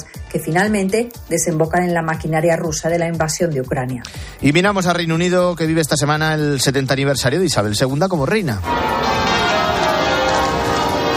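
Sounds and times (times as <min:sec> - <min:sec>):
speech: 0:00.0 - 0:09.1
cathedral church bells pealing for a thanksgiving service in London: 0:08.6 - 0:11.1.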